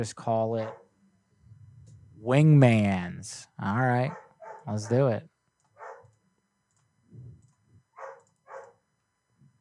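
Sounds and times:
speech: 0.0 - 0.8, 2.2 - 5.3
dog barking: 0.6 - 0.9, 4.1 - 5.1, 5.8 - 6.2, 8.0 - 8.8.

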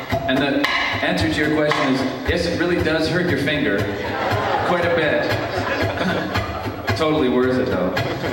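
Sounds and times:
speech: 0.3 - 6.2, 7.0 - 8.3
sharp percussive clicks tapped against ukulele strings: 1.6 - 2.1
laughter: 3.7 - 8.3.

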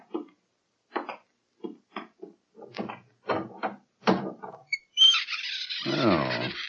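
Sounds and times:
new wood door swinging open with a groaning creak: 4.5 - 6.6.

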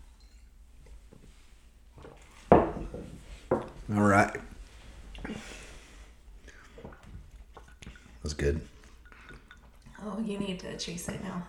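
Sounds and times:
glasses clinking in a toast over drinks: 0.0 - 0.6, 2.1 - 3.7, 6.5 - 10.0
speech: 3.9 - 4.5, 8.4 - 8.7, 10.2 - 11.4.

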